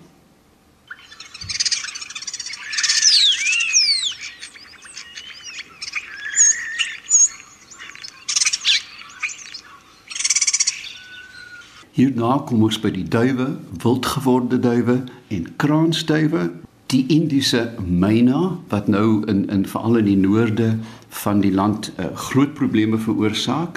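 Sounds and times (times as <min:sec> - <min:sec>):
European starling calls: 0:00.8 - 0:11.9
speech: 0:12.0 - 0:23.7.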